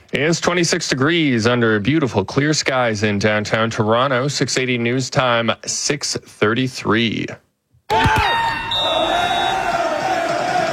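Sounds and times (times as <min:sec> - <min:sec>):
speech: 0:00.1 - 0:07.4
excited shouts of fans: 0:07.9 - 0:10.7
soccer fans cheering and screaming in a packed room: 0:07.9 - 0:10.7
whistles: 0:08.2 - 0:09.8.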